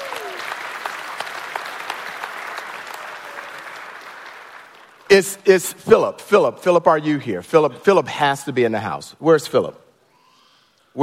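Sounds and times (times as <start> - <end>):
audience applause: 0.0 - 5.1
speech: 5.1 - 9.8.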